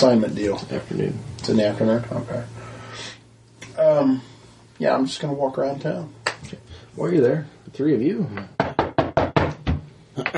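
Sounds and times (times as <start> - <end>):
speech: 0.0 - 3.1, 3.8 - 8.8, 10.2 - 10.3
heavy knocking on a door: 8.6 - 9.9.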